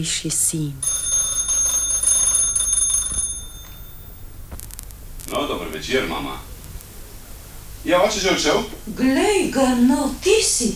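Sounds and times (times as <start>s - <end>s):
speech: 0.0s - 1.1s, 5.8s - 6.5s, 7.8s - 10.7s
doorbell ringing with bright sustained electronic tone: 0.8s - 4.5s.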